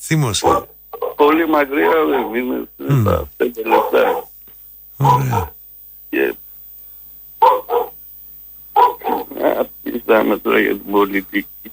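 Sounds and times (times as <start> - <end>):
speech: 0.1 - 4.3, 5.0 - 6.4, 9.6 - 11.7
dog barking outside: 1.8 - 2.2, 3.7 - 4.3, 5.0 - 5.5, 7.4 - 8.0, 8.8 - 9.3.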